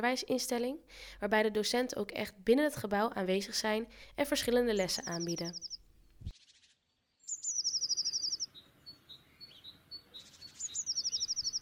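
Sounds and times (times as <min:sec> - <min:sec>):
speech: 0:00.0 - 0:06.3
small birds chirping and singing outdoors in a youth facility yard on a sunny day: 0:04.4 - 0:05.8, 0:06.5 - 0:11.6.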